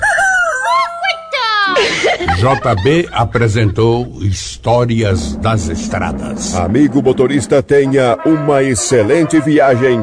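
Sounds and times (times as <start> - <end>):
rooster crowing at dawn: 0.0 - 1.0
laughter: 1.7 - 4.0
speech: 2.4 - 10.0.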